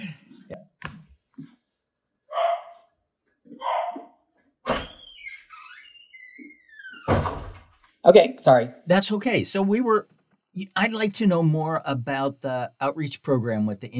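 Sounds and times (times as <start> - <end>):
dog whining and yelping: 2.3 - 2.8, 3.5 - 4.1
dog barking: 2.3 - 2.9, 3.5 - 4.2
speech: 8.0 - 13.9.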